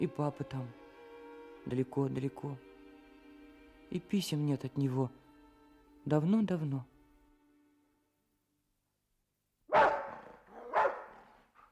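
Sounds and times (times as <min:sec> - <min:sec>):
speech: 0:00.0 - 0:00.8, 0:01.6 - 0:02.7, 0:03.9 - 0:05.2, 0:06.0 - 0:06.9
dog barking: 0:09.7 - 0:11.7.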